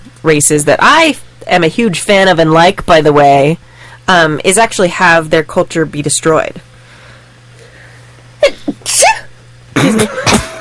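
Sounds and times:
speech: 0:00.2 - 0:06.7, 0:09.8 - 0:10.5
sneezes: 0:08.5 - 0:10.5.

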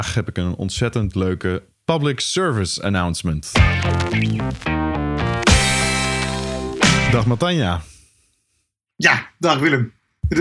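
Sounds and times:
speech: 0:00.0 - 0:05.5, 0:07.1 - 0:07.9, 0:09.0 - 0:10.3
distorted guitar-heavy podcast intro jingle: 0:03.6 - 0:07.4.

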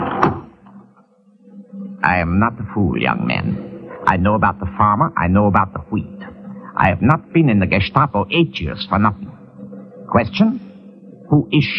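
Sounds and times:
door shutting with a solid thud: 0:00.0 - 0:00.5
speech: 0:02.0 - 0:06.2, 0:06.8 - 0:09.3, 0:10.1 - 0:10.6, 0:11.3 - 0:11.7.

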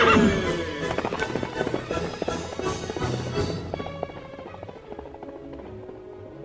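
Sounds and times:
horse whinnying: 0:00.0 - 0:04.8
galloping hoofbeats: 0:00.0 - 0:06.4.

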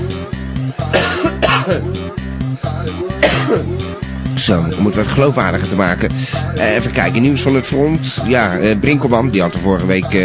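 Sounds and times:
steady rhythmic music bed: 0:00.0 - 0:10.2
harsh coughing: 0:00.8 - 0:02.0, 0:03.0 - 0:03.8
speech: 0:01.7 - 0:02.0, 0:04.4 - 0:10.2.

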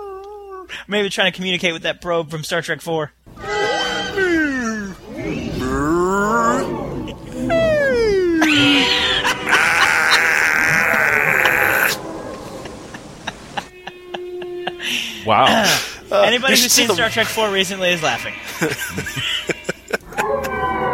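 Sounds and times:
human voice imitating car engine revving, like humpback whale song: 0:00.0 - 0:00.7, 0:03.4 - 0:12.0
speech: 0:00.7 - 0:03.2, 0:15.3 - 0:19.4
laughter: 0:06.3 - 0:17.1, 0:18.4 - 0:20.8.

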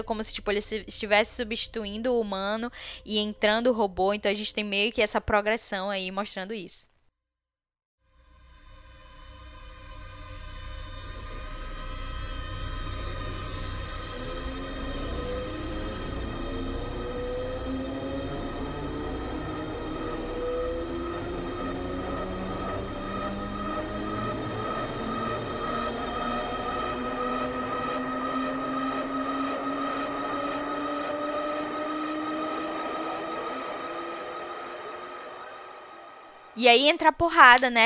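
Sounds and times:
speech: 0:00.0 - 0:06.9, 0:36.6 - 0:37.8
sustained drone: 0:08.1 - 0:36.6
low rumble: 0:08.2 - 0:36.5
layered electronic tones gliding upward in a film score: 0:10.7 - 0:36.6.

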